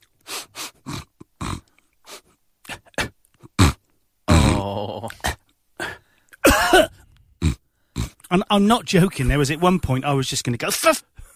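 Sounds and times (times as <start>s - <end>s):
strained vocal grunts: 0.8s - 1.8s, 2.6s - 8.3s
person imitating a man's coughing and throat clearing: 2.7s - 8.2s
speech: 4.6s - 5.3s, 8.4s - 11.1s.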